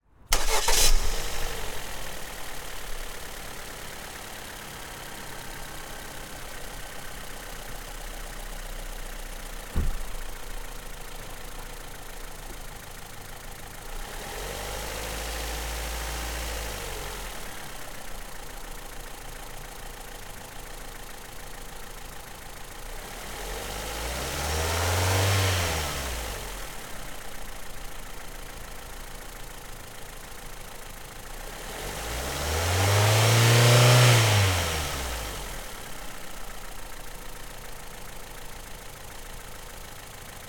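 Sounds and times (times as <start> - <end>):
Ford Fusion 1.6 Duratec petrol engine starting: 0.1 - 40.4
Ford Fusion petrol engine revving in neutral: 0.3 - 8.4, 13.0 - 17.8, 22.9 - 26.8, 31.4 - 36.3.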